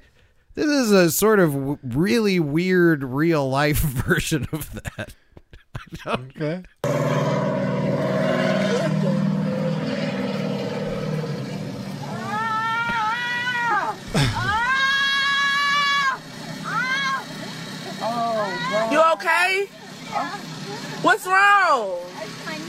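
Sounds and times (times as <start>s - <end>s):
speech: 0.6s - 5.2s, 5.9s - 7.3s, 19.1s - 22.6s
person imitating a revving motorcycle engine with their voice: 6.8s - 21.2s
steady low hum: 6.8s - 22.6s.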